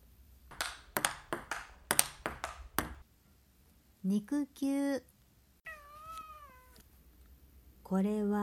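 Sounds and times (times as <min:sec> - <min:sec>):
ping-pong ball bouncing: 0:00.5 - 0:03.0
speech: 0:04.0 - 0:05.1, 0:07.9 - 0:08.4.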